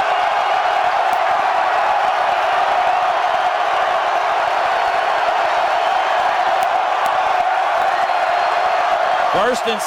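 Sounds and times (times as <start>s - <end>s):
large ballpark crowd cheering and shouting: 0.0s - 9.8s
speech: 9.4s - 9.8s.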